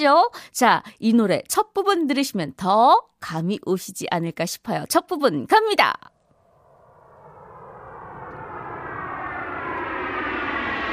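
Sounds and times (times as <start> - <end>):
speech: 0.0 - 6.1
jet airplane roar with rising pitch sweep: 6.3 - 10.9.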